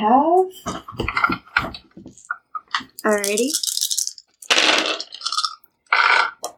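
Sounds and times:
speech: 0:00.0 - 0:01.8, 0:03.0 - 0:03.7
six-sided dice rattling across a hard surface: 0:02.1 - 0:06.5.

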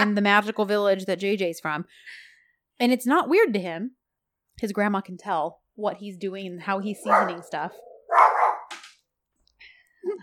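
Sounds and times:
speech: 0:00.0 - 0:04.0, 0:04.6 - 0:07.9, 0:10.0 - 0:10.2
dog barking gruffly, reacting to noises outside: 0:07.0 - 0:08.7.

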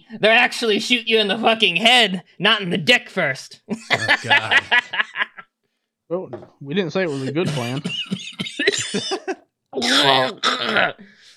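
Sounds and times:
speech: 0:00.1 - 0:05.3, 0:06.1 - 0:11.1
laughter: 0:03.7 - 0:05.5
harsh raspy coughing: 0:07.0 - 0:11.2
faint wheezy breath: 0:11.0 - 0:11.3.

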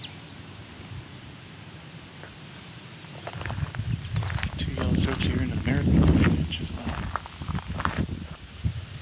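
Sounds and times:
gust of wind buffeting the microphone: 0:03.2 - 0:09.0
speech: 0:05.2 - 0:07.2.

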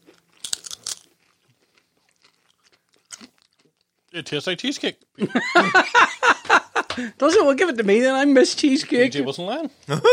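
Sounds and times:
crunching a nacho chip loaded with dip: 0:00.0 - 0:03.9
chewing: 0:00.0 - 0:04.2
speech: 0:04.2 - 0:06.3, 0:07.0 - 0:10.1
laughter: 0:05.2 - 0:07.1, 0:09.9 - 0:10.1.

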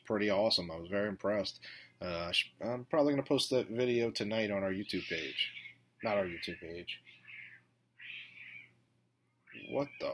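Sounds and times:
speech: 0:00.1 - 0:07.2, 0:09.6 - 0:10.1
cat squealing and wailing outside: 0:04.9 - 0:08.7, 0:09.5 - 0:10.1.

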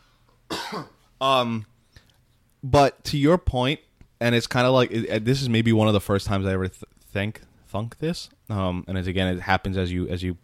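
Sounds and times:
person coughing: 0:00.5 - 0:01.0
speech: 0:00.7 - 0:01.7, 0:02.6 - 0:10.4.

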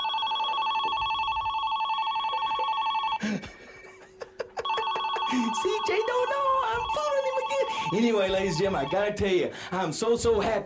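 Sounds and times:
telephone ringing with a warbling electronic trill: 0:00.0 - 0:03.2, 0:04.6 - 0:09.5
speech: 0:03.2 - 0:03.6, 0:05.3 - 0:10.6.

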